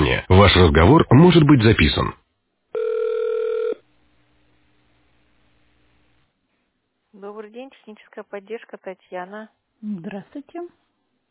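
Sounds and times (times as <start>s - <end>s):
speech: 0.1s - 2.2s, 7.2s - 10.8s
telephone ringback tone during transfer to a bank support operator: 2.8s - 3.8s.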